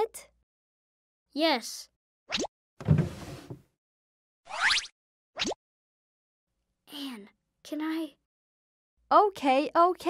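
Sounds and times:
speech: 0.0 - 0.3, 1.3 - 2.9, 6.9 - 8.2, 9.1 - 10.0
drawer sliding open: 2.8 - 3.7.

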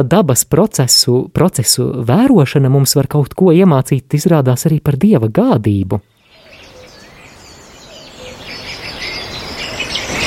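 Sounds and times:
speech: 0.0 - 6.1
birds chirping and twittering: 6.0 - 10.2.

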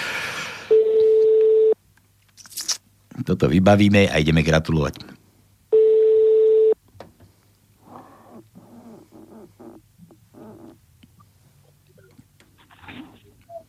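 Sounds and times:
low hum: 0.0 - 13.6
telephone ringing tone during a call: 0.7 - 1.8, 5.7 - 6.8
speech: 3.2 - 5.1.

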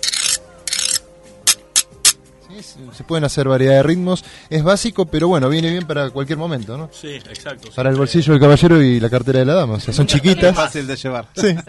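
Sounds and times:
scallop shells scraped together as a percussion instrument: 0.0 - 2.2
speech: 2.6 - 11.6.

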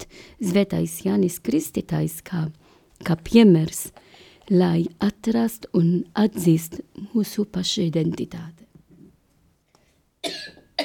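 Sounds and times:
speech: 0.3 - 8.6
person coughing: 10.2 - 10.8.

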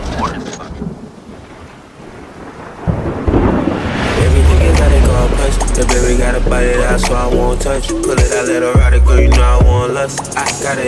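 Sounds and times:
steady rain: 0.0 - 7.8
deep rolling thunder: 0.6 - 8.2
speech: 6.1 - 10.8.

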